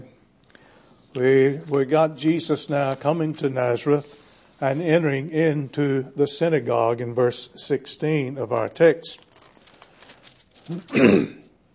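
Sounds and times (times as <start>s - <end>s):
speech: 1.2s - 9.3s, 10.7s - 11.4s
speaker clearing throat during a sermon: 10.7s - 11.5s.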